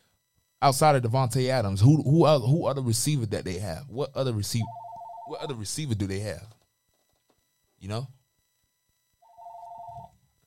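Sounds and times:
speech: 0.6 - 6.6, 7.8 - 8.2
telephone ringing: 4.6 - 5.6, 9.2 - 10.3.

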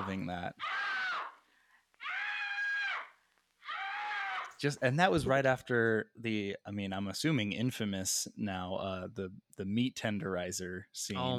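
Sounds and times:
speech: 0.0 - 0.8, 4.6 - 11.3
woman screaming in a horror film scene: 0.6 - 1.4, 2.0 - 4.6.

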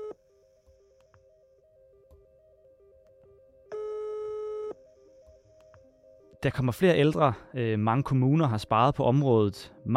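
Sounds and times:
telephone line tones of an outgoing call: 0.0 - 6.4
speech: 6.4 - 9.9.

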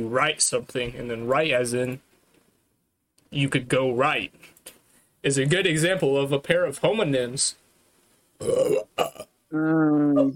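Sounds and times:
speech: 0.0 - 2.1, 3.3 - 4.5, 5.2 - 7.6, 8.4 - 10.3
loud burp: 8.4 - 9.3.

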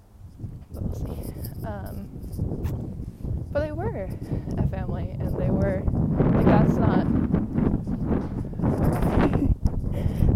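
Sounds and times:
wind blowing across a microphone outdoors: 0.0 - 10.3
speech: 3.6 - 7.3.

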